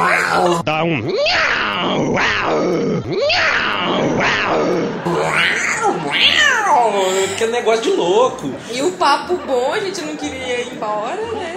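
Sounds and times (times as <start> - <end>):
voice imitating two cats fighting with yowls and snarling wails: 0.0 - 7.4
speech: 0.4 - 11.5
laughter: 3.2 - 11.5.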